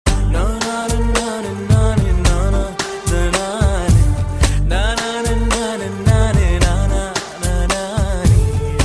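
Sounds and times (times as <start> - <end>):
rhythm: 0.1 - 8.8.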